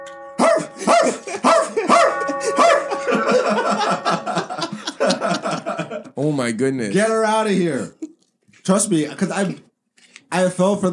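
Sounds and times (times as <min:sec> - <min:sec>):
steady tonal hum: 0:00.0 - 0:06.0
dog barking in sharp yips: 0:00.4 - 0:02.9
laughter: 0:01.0 - 0:06.1
speech: 0:06.2 - 0:08.0, 0:08.7 - 0:09.7, 0:10.3 - 0:10.9.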